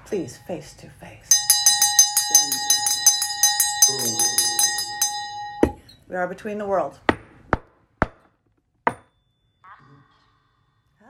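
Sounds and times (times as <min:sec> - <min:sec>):
speech: 0:00.1 - 0:01.4, 0:03.9 - 0:04.4, 0:06.1 - 0:07.1
small hand bell ringing rapidly: 0:01.3 - 0:05.9.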